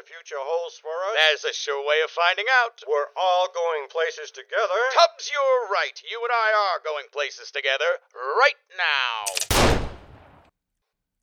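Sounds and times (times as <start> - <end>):
speech: 0.1 - 9.8
gunshot: 9.3 - 10.5.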